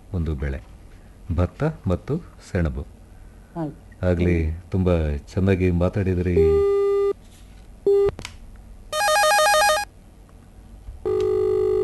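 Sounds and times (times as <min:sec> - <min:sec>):
speech: 0:00.1 - 0:00.7, 0:01.3 - 0:03.0, 0:03.6 - 0:06.7
electronic telephone ringing with an incoming call: 0:08.9 - 0:09.9, 0:11.0 - 0:11.8.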